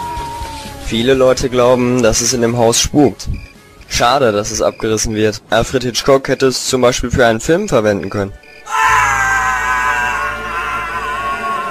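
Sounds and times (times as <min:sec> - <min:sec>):
long high strained scream near a supposedly haunted old house: 0:00.0 - 0:00.9, 0:08.6 - 0:11.6
speech: 0:00.9 - 0:08.4.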